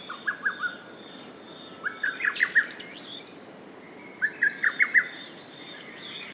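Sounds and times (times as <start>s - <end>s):
faint background birdsong: 0.0s - 6.3s
lesser cuckoo song: 0.0s - 6.3s.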